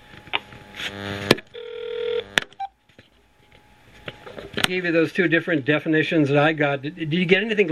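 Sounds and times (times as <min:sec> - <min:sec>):
speech: 0:00.8 - 0:01.5, 0:04.7 - 0:07.6
telephone dialing tones from redialing a dropped call: 0:01.6 - 0:02.7.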